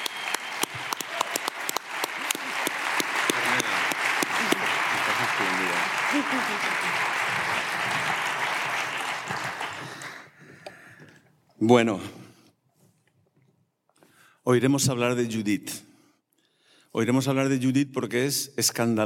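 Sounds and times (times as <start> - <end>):
audience applause: 0.0 - 10.6
speech: 11.6 - 12.2, 14.5 - 15.8, 17.0 - 19.0.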